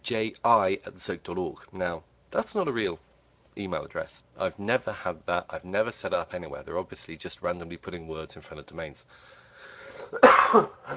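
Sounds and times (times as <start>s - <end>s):
speech: 0.1s - 9.4s, 10.1s - 10.9s
harsh cough: 9.9s - 10.9s.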